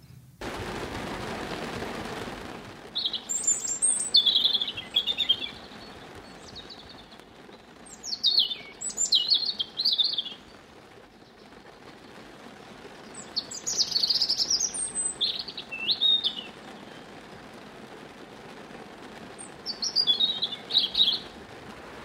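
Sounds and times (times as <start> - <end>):
soft outdoor hiss: 0.0 - 22.0
European robin singing: 3.0 - 10.6, 13.1 - 17.0, 19.6 - 21.3.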